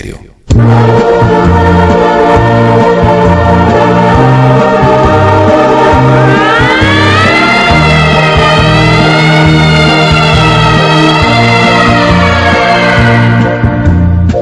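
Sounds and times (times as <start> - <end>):
speech: 0.0 - 1.6
low droning chords: 0.0 - 14.3
distant wailing siren: 2.6 - 13.4.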